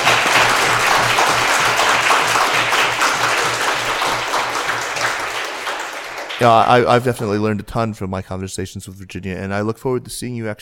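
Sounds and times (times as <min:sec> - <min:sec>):
audience applause: 0:00.0 - 0:07.2
speech: 0:06.4 - 0:10.6.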